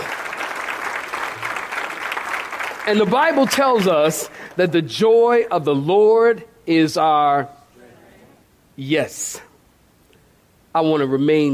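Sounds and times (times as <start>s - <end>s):
audience clapping hands: 0.0s - 4.6s
speech: 2.9s - 7.6s, 8.8s - 9.5s, 10.8s - 11.5s.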